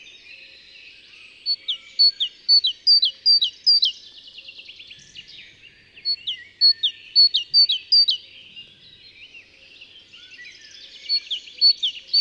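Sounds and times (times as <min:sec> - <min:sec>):
Great tit chirping: 0:01.5 - 0:03.9, 0:06.0 - 0:08.2, 0:10.4 - 0:12.1.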